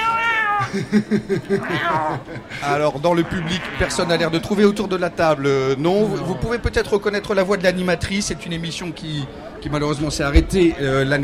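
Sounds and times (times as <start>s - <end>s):
cat meowing into a microphone: 0.0s - 0.7s, 1.6s - 2.2s, 3.2s - 4.0s
laughter: 0.6s - 4.8s
speech: 0.7s - 11.2s.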